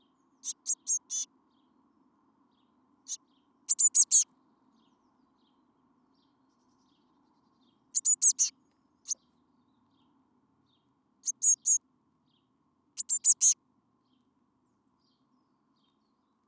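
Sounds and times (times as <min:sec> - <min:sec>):
Eurasian blue tit Cyanistes caeruleus calls: 0:00.4 - 0:01.3, 0:03.1 - 0:04.2, 0:08.0 - 0:08.5, 0:11.2 - 0:11.8, 0:13.0 - 0:13.6.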